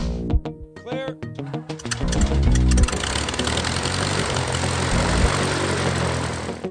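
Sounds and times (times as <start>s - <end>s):
propeller airplane engine running steadily: 1.8s - 6.6s.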